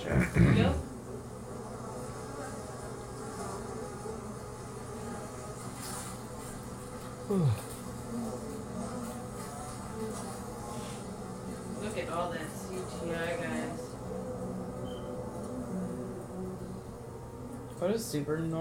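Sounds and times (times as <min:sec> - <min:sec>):
speech: 0:00.0 - 0:00.9, 0:07.3 - 0:07.7, 0:17.9 - 0:18.5
steady low buzzing drone of bees: 0:00.0 - 0:18.5.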